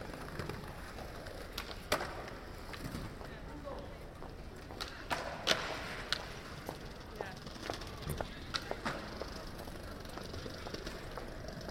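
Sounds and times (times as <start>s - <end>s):
skateboard wheels rolling on an open square: 0.0s - 11.7s.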